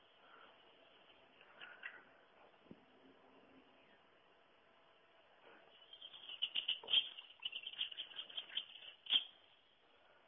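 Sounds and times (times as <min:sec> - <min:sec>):
outdoor hiss: 0:00.0 - 0:10.2
grey wagtail Motacilla cinerea calls: 0:05.7 - 0:09.4.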